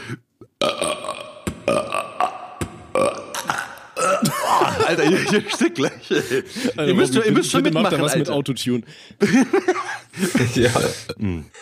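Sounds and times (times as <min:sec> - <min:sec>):
speech: 0:00.1 - 0:01.0, 0:04.8 - 0:11.6
person burping a melody in short throaty burps: 0:00.4 - 0:04.4
laughter: 0:04.1 - 0:08.2, 0:09.2 - 0:11.1.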